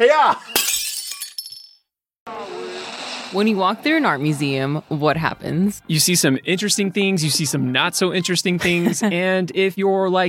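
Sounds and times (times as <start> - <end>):
speech: 0.0 - 0.6, 3.3 - 10.2
plate smashing with shards clattering: 0.5 - 1.7
laughter: 8.4 - 9.5.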